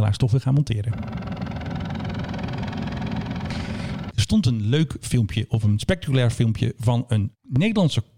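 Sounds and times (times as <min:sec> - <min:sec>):
speech: 0:00.1 - 0:01.3, 0:04.3 - 0:08.1
helicopter engine droning with fast low thumping: 0:00.9 - 0:04.1.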